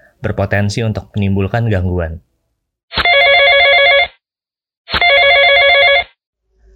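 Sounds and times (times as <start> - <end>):
speech: 0.2 - 2.3
loud mobile phone ringtone with warbling electronic trill: 3.0 - 4.2, 4.9 - 6.2.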